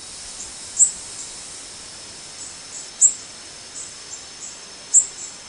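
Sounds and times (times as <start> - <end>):
female Golden-winged Warbler flight calls: 0.2 - 1.5, 2.3 - 5.3.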